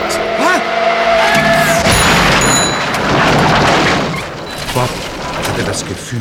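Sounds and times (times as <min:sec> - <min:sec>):
car screeching in the dark: 0:00.0 - 0:06.2
car slamming into a person: 0:01.4 - 0:06.1
crunching debris: 0:01.4 - 0:06.2
tinkling glass: 0:01.9 - 0:03.0
speech: 0:05.8 - 0:06.2.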